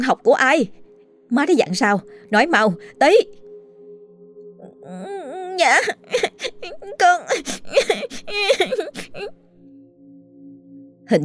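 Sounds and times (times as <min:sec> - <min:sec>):
speech: 0:00.0 - 0:03.4, 0:04.8 - 0:09.4, 0:11.1 - 0:11.2
young boy sobbing after being scolded at home: 0:04.6 - 0:09.4.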